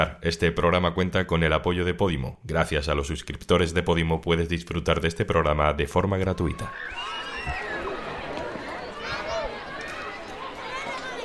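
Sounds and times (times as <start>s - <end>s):
speech: 0.0s - 7.6s
children and parents chattering at a school gate: 6.6s - 11.2s
footsteps: 6.7s - 11.2s.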